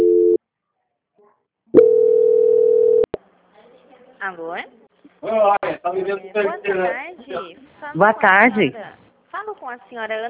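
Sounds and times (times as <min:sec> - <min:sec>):
telephone line tone while a call is transferred: 0:00.0 - 0:00.4, 0:01.8 - 0:03.1
speech: 0:04.2 - 0:10.2.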